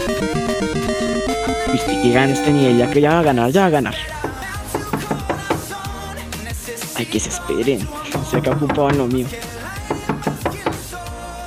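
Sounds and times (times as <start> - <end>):
speech: 0.2 - 0.6, 1.7 - 4.1, 7.0 - 9.5
steady electronic music: 1.0 - 4.2
sharp knocks: 4.1 - 5.8, 8.1 - 11.0.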